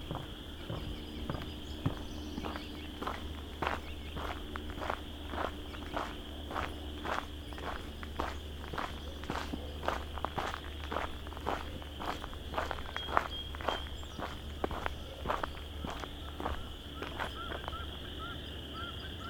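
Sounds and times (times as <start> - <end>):
mallards wading through shallow water: 0.0 - 17.9
bird calls: 0.0 - 19.2
chorus frogs chorus: 0.0 - 19.2.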